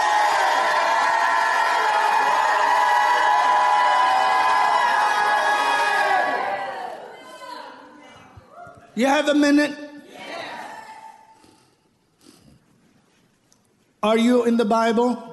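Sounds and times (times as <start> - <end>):
large crowd shouting and cheering: 0.0 - 9.0, 10.0 - 11.3
speech: 9.0 - 9.8, 14.0 - 15.3.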